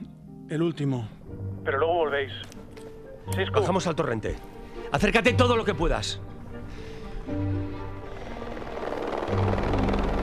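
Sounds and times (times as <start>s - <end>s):
speech: 0.5s - 2.6s, 3.2s - 7.5s
helicopter rotor and engine drone in flight: 7.8s - 10.2s.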